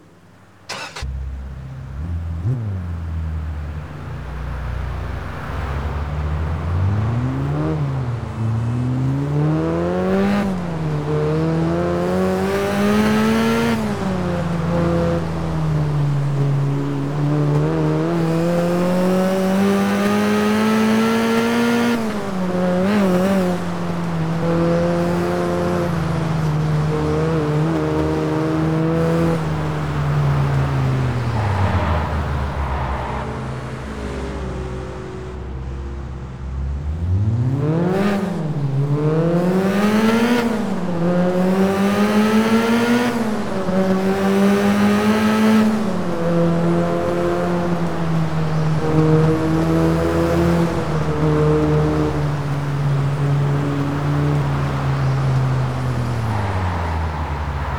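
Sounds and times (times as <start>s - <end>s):
Lotus Sport Exige 240R sports car engine: 0.0s - 57.7s.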